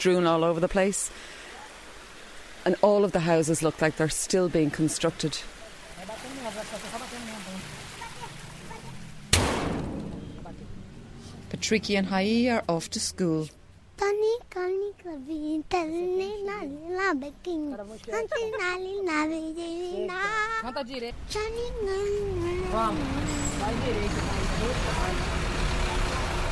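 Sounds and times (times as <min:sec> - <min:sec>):
speech: 0:00.0 - 0:01.4, 0:02.6 - 0:07.3, 0:11.5 - 0:25.3
traffic at the central bus station in Rio: 0:00.0 - 0:26.5
vehicles idling and passing at a bus station in Rio: 0:01.1 - 0:26.5
child chattering in a high voice: 0:14.0 - 0:23.4.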